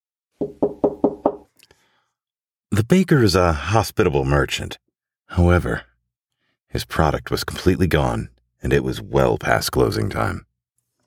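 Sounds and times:
soft knocks on the wooden door of a closed bakery: 0.4 - 1.4
speech: 2.8 - 5.9, 6.7 - 10.5.

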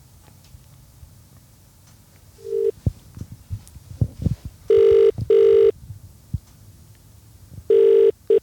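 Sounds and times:
telephone ringback tone with double rings: 2.4 - 2.8, 4.7 - 5.7, 7.7 - 8.4.

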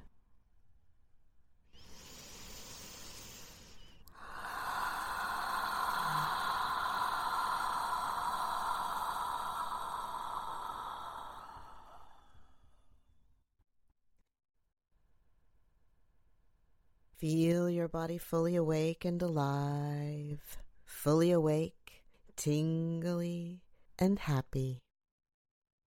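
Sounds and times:
deep belly breathing during a breathwork exercise: 1.7 - 13.1
speech: 17.2 - 21.8, 22.4 - 24.8.

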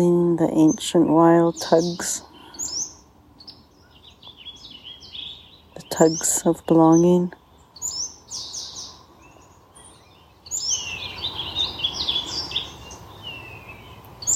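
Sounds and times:
speech: 0.0 - 2.3, 5.9 - 7.4
several birds singing and chirping: 0.0 - 14.3
soft steady outdoor hush: 0.0 - 14.3.

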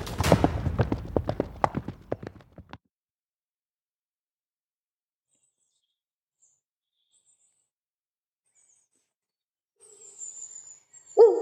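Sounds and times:
horse hooves clip-clopping: 0.0 - 2.8.

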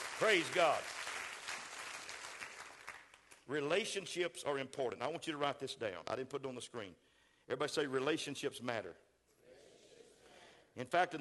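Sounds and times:
crowd applauding in a large room: 0.0 - 3.5
speech: 0.2 - 1.0, 3.5 - 9.0, 10.8 - 11.1.

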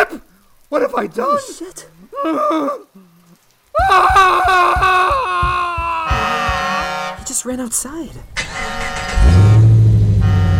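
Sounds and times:
speech: 0.1 - 3.1, 3.8 - 5.4, 7.4 - 9.4
laughter: 3.8 - 7.1
deep loud truck horn blaring: 6.1 - 7.3, 8.4 - 10.5
truck roaring: 8.4 - 10.5.

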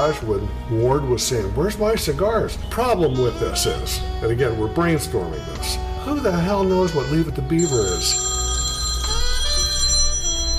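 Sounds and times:
speech: 0.0 - 8.2
telephone ringing with an electronic trill: 7.6 - 10.5.

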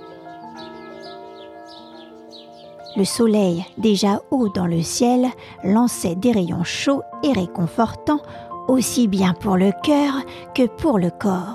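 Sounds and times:
birds whistling and chirping in the foliage: 0.0 - 5.1
speech: 3.0 - 11.5.

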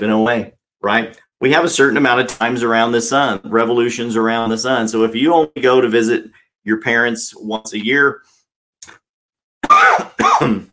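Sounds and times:
speech: 0.0 - 9.0, 9.8 - 10.7
person coughing into a microphone: 9.6 - 10.7.

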